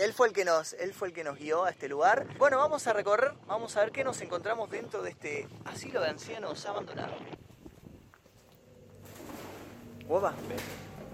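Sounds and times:
speech: 0.0 - 7.4, 10.1 - 10.8
pigeons cooing softly in an echoing space: 8.8 - 11.1.

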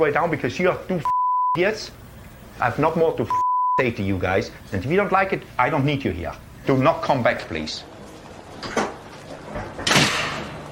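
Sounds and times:
speech: 0.0 - 7.9
door slamming shut: 8.6 - 10.6.

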